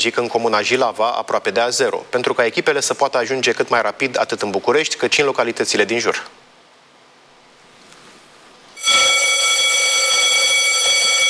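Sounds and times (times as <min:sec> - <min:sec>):
speech: 0:00.0 - 0:06.4
fire station alarm calling CBRN firefighter crews at a new station in Jilava: 0:08.8 - 0:11.2.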